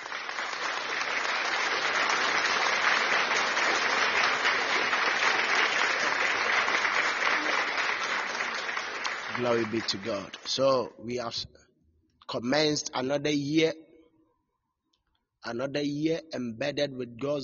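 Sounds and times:
audience applause: 0:00.0 - 0:10.5
speech: 0:09.4 - 0:11.6, 0:12.3 - 0:13.8, 0:15.4 - 0:17.4.

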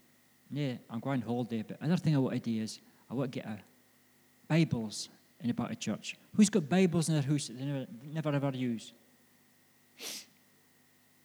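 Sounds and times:
quiet hum: 0:00.0 - 0:11.2
speech: 0:00.5 - 0:03.7, 0:04.5 - 0:09.0, 0:10.0 - 0:10.3
person sniffing sharply through the nose: 0:10.0 - 0:10.4.

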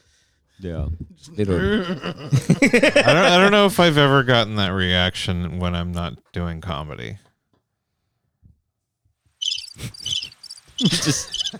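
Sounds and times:
speech: 0:00.6 - 0:07.3, 0:09.8 - 0:10.2, 0:10.8 - 0:11.5
laughter: 0:01.3 - 0:06.1, 0:09.8 - 0:11.5
cricket chirping in rapid trills: 0:09.4 - 0:11.5.

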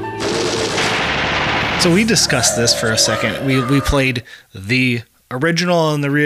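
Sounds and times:
harsh noisy music with screeching bursts and crackling over a drone: 0:00.2 - 0:04.3
speech: 0:01.8 - 0:06.2.

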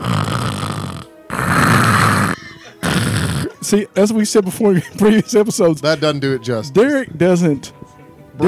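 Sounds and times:
person imitating a man's loud snoring with their voice: 0:00.0 - 0:03.6
speech: 0:03.7 - 0:07.8.

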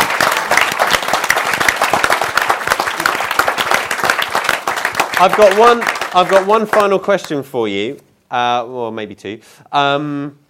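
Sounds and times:
crowd applauding: 0:00.0 - 0:07.0
speech: 0:05.2 - 0:10.4.

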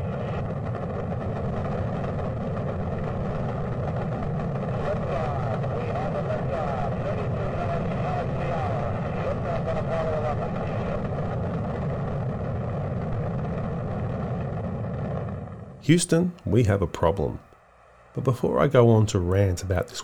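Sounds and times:
rocket engines roaring at launch: 0:00.0 - 0:17.4, 0:18.0 - 0:20.0
speech: 0:15.9 - 0:17.5, 0:18.2 - 0:20.0.

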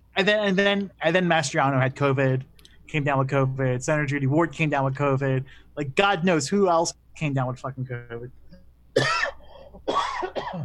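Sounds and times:
speech: 0:00.2 - 0:08.4
person coughing: 0:09.0 - 0:10.6.

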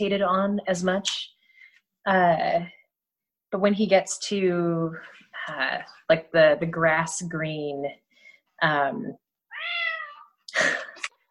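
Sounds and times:
speech: 0:00.0 - 0:01.4, 0:02.0 - 0:02.8, 0:03.5 - 0:08.0, 0:08.6 - 0:09.2
cat meowing: 0:09.5 - 0:10.4.

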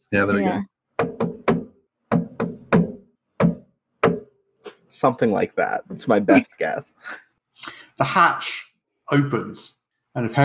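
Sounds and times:
speech: 0:00.1 - 0:00.7, 0:05.0 - 0:10.4
sharp knocks on a hard wooden surface in a rhythmic pattern: 0:01.0 - 0:04.4.

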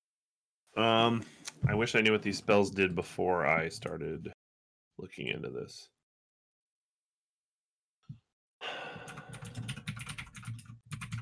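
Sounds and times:
speech: 0:00.8 - 0:04.4, 0:05.0 - 0:06.0
soft breath-like sound: 0:08.6 - 0:09.6
rapid typing on a computer keyboard: 0:09.0 - 0:11.2.

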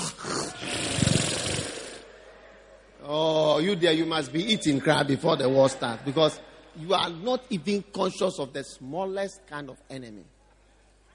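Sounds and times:
person's voice imitating a lion's roar: 0:00.0 - 0:02.0
speech: 0:03.6 - 0:10.4.

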